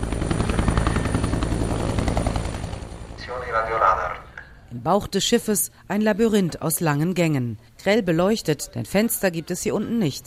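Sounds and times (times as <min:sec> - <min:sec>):
helicopter rotor blades chopping on an Italian Navy aircraft carrier deck: 0:00.0 - 0:04.3
speech: 0:04.7 - 0:10.2.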